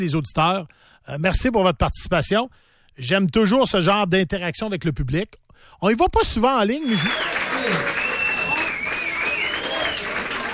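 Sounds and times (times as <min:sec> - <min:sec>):
speech: 0:00.0 - 0:08.0
applause from a group: 0:06.8 - 0:10.5
thin whistling or cheering tone: 0:06.8 - 0:10.5.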